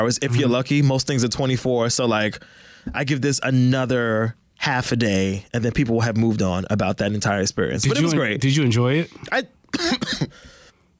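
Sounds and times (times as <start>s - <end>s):
speech: 0.0s - 10.6s
harsh rapid coughs: 9.2s - 10.5s.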